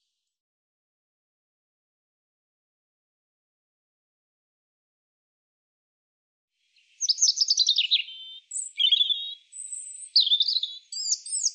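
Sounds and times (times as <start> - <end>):
European robin song of varied high phrases: 6.6 - 11.5.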